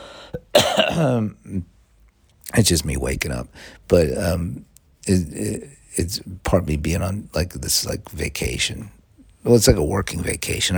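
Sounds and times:
short rough cough: 0.4s - 1.6s
raspy throat-clearing: 0.4s - 1.7s
speech: 1.0s - 1.7s, 2.5s - 10.7s.

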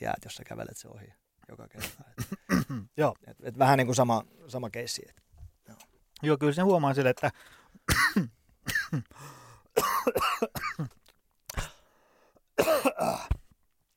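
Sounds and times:
speech: 0.0s - 11.0s
person coughing after water went down the wrong way: 1.8s - 2.9s, 7.9s - 9.2s, 9.8s - 11.8s, 12.6s - 13.4s.

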